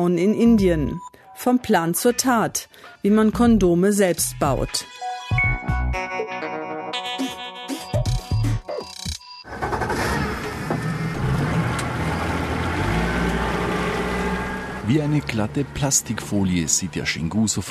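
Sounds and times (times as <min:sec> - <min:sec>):
speech: 0:00.0 - 0:05.8, 0:14.9 - 0:17.6
brief burst of music: 0:00.0 - 0:09.5
speedboat engine roaring while picking up speed on a river: 0:09.6 - 0:17.6.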